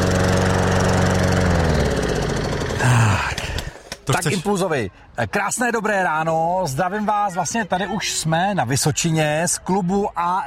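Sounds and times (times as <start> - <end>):
lawn mower engine cutting grass: 0.0 - 4.1
speech: 4.1 - 10.4.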